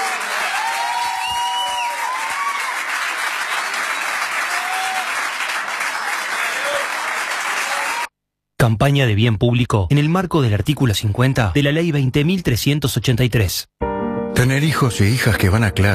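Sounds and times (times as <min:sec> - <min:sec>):
loud sustained applause from a large audience: 0:00.0 - 0:08.1
faint whistles or cheers: 0:00.4 - 0:02.8, 0:03.4 - 0:05.2
speech: 0:08.7 - 0:13.8, 0:14.4 - 0:15.9.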